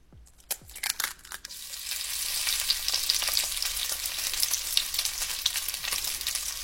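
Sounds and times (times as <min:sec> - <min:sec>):
eggs frying in hot oil: 0:01.4 - 0:06.6.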